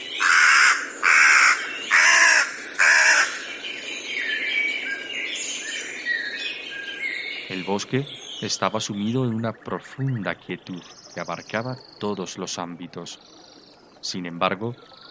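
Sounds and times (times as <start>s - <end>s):
birds chirping and twittering: 0.0s - 15.0s
crow cawing in a forest: 0.2s - 3.4s
speech: 7.5s - 13.4s, 14.0s - 15.0s.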